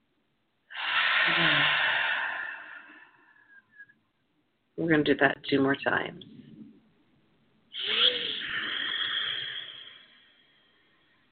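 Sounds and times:
deep breath drawn in during a guided relaxation exercise: 0.7s - 3.8s, 7.8s - 11.2s
speech: 1.3s - 1.8s, 4.8s - 6.4s.

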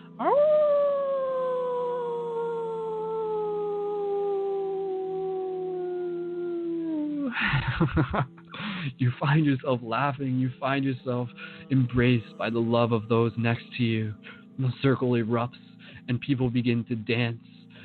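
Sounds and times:
wolf howling: 0.0s - 7.4s
laughter: 7.3s - 8.3s
speech: 7.4s - 17.6s.

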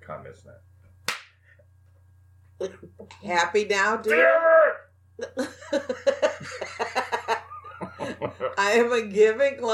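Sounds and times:
low steady hum: 0.0s - 9.7s
speech: 0.3s - 0.8s, 2.6s - 6.6s, 8.2s - 9.7s
open-hand slap across the face: 1.0s - 1.4s
laughter: 5.2s - 8.6s.

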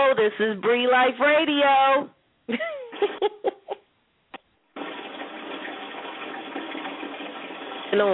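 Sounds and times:
speech: 0.2s - 3.5s, 7.9s - 8.1s
laughter: 2.5s - 3.8s
toilet flushing: 4.7s - 8.1s
steady rush of toilet water: 4.8s - 8.1s.

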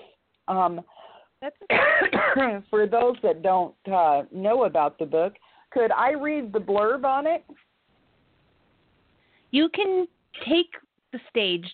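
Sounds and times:
speech: 0.5s - 7.6s, 9.5s - 11.7s
throaty cough from a congested person: 1.7s - 2.6s.

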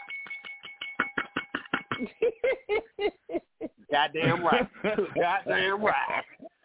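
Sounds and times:
bell being struck in a rapid steady rhythm: 0.0s - 2.1s
choppy laughter-like bursts: 1.7s - 6.6s
speech: 2.0s - 6.3s.

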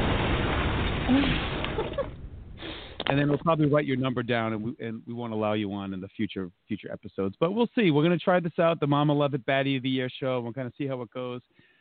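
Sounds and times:
lo-fi explosion sound effect: 0.0s - 2.8s
speech: 1.1s - 2.0s, 3.1s - 11.6s.

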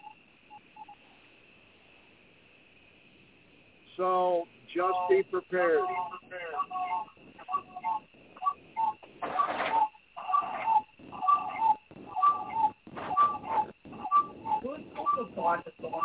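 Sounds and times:
noise: 1.0s - 16.0s
speech: 4.0s - 6.4s
constant high-pitched hum: 4.9s - 16.0s
cuckoo clock chiming two-note falling calls: 8.8s - 15.2s.

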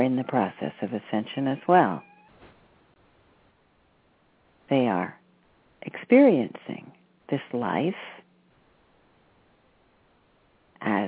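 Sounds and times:
speech: 0.0s - 2.1s, 4.7s - 5.2s, 5.8s - 8.2s, 10.8s - 11.0s
hiss: 0.0s - 11.0s
kitten meowing: 1.9s - 2.3s.

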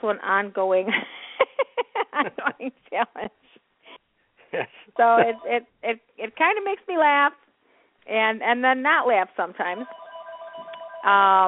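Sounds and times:
speech: 0.0s - 1.2s, 2.2s - 3.4s, 4.5s - 7.4s, 8.0s - 10.0s, 11.0s - 11.4s
laughter: 1.5s - 2.8s
telephone ringing with a faint electronic warble: 9.7s - 11.4s.

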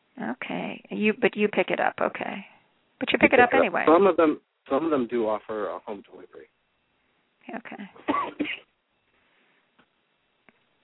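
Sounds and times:
speech: 0.2s - 6.6s, 7.4s - 8.6s
sharp loud cough: 8.0s - 8.6s.

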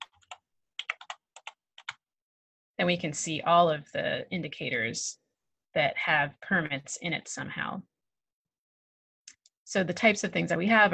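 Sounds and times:
typing a search term on a computer keyboard: 0.0s - 2.0s
speech: 2.8s - 5.2s, 5.8s - 7.9s, 9.7s - 10.9s.

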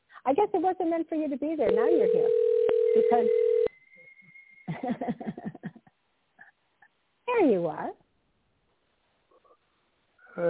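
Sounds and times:
speech: 0.2s - 3.6s, 4.8s - 5.4s, 7.4s - 8.0s
electronic phone line ringback tone: 1.7s - 3.7s
laughter: 4.7s - 5.9s
faint voice: 10.3s - 10.4s.

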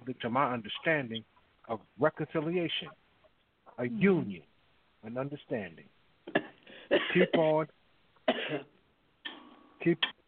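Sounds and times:
speech: 0.1s - 3.0s, 3.8s - 6.4s, 7.1s - 7.8s, 8.5s - 8.7s, 9.8s - 10.2s
person coughing: 6.3s - 7.6s, 8.3s - 8.7s.

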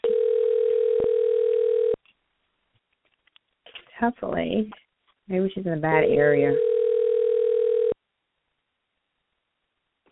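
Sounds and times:
telephone dial tone while redialing a dropped call: 0.0s - 2.0s, 6.6s - 8.0s
speech: 4.0s - 6.7s.

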